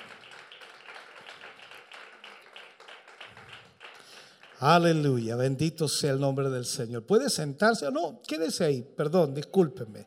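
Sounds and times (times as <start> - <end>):
crowd clapping in praise to the Lord: 0.0 - 5.2
speech: 4.6 - 10.0.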